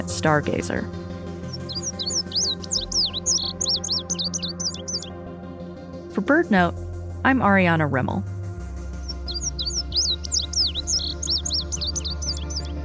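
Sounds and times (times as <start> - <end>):
speech: 0.0 - 1.0, 6.2 - 8.3
Indigo Bunting song of quick high paired notes: 1.5 - 5.1, 9.0 - 12.7.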